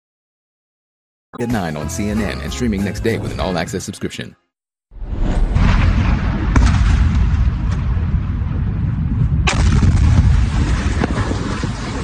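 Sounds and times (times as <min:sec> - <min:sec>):
speech: 0:01.3 - 0:04.4
explosions from a missile strike, heavy rumbling roar: 0:05.0 - 0:12.0.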